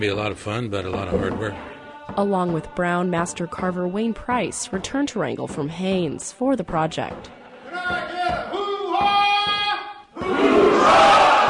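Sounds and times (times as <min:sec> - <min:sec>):
speech: 0:00.0 - 0:08.4
single voice giving loud drawn-out rallying shouts: 0:07.8 - 0:10.4
crowd cheering and whooping: 0:10.2 - 0:11.4.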